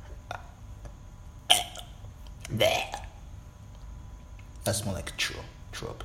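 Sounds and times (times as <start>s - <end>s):
person burping: 0.3s - 0.6s, 1.5s - 3.2s
speech: 2.5s - 3.0s, 4.7s - 6.0s.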